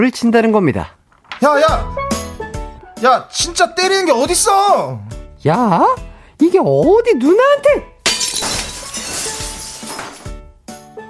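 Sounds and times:
speech: 0:00.0 - 0:02.2, 0:03.0 - 0:07.9
glass breaking in the house: 0:08.0 - 0:10.4
glass debris clinking: 0:08.0 - 0:10.4.

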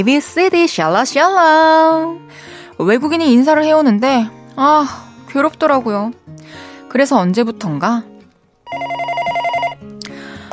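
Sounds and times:
speech: 0:00.0 - 0:08.1
office telephone ringing with an electronic warble: 0:08.7 - 0:09.8.

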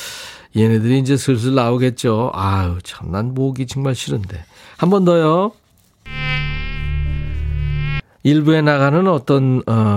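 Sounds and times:
speech: 0:00.5 - 0:06.2, 0:08.2 - 0:09.9
mosquito whining in flight: 0:06.1 - 0:08.0.

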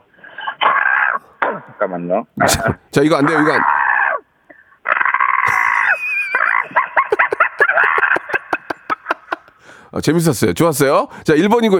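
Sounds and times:
person on the phone in a parked car imitating crow caws: 0:00.4 - 0:01.8, 0:02.4 - 0:06.7
speech: 0:01.8 - 0:03.8, 0:09.9 - 0:11.7
laughter: 0:05.4 - 0:09.6.

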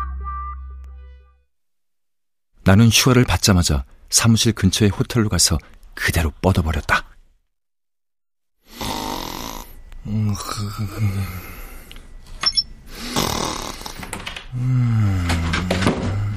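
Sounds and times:
speech: 0:02.6 - 0:07.0, 0:10.1 - 0:11.6, 0:14.5 - 0:15.7
sleeping person snoring: 0:08.6 - 0:12.1, 0:12.9 - 0:16.3.

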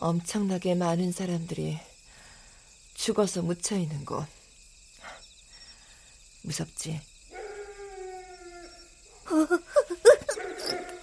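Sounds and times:
speech: 0:00.0 - 0:01.9, 0:03.0 - 0:04.4, 0:06.4 - 0:07.1, 0:09.3 - 0:09.9
dog howling at night beside a cemetery: 0:07.3 - 0:09.3, 0:10.0 - 0:11.0
dog whimpering and yelping at night beside a cemetery: 0:09.7 - 0:11.0.

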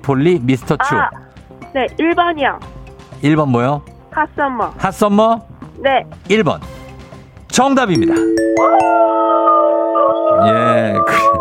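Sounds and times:
speech: 0:00.0 - 0:06.7, 0:07.5 - 0:09.4, 0:10.4 - 0:11.3
wolf or fox howling: 0:08.6 - 0:11.3.

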